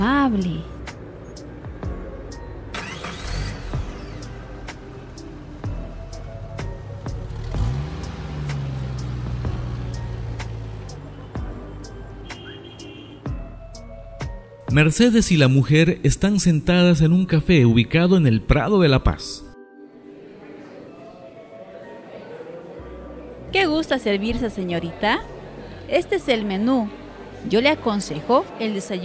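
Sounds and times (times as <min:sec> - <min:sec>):
speech: 0:00.2 - 0:00.8, 0:14.8 - 0:19.4, 0:23.8 - 0:29.0
car engine starting: 0:02.6 - 0:12.9.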